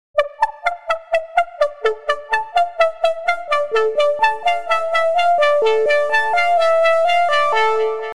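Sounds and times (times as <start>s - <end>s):
synth pluck: 0.2s - 8.1s.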